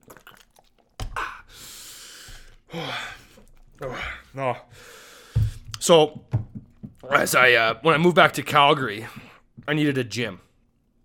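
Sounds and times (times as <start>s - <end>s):
person sipping and swallowing water: 0.0s - 4.3s
breathy exhales: 1.2s - 5.7s
speech: 2.7s - 3.2s, 3.8s - 5.0s, 5.9s - 6.3s, 7.1s - 10.4s.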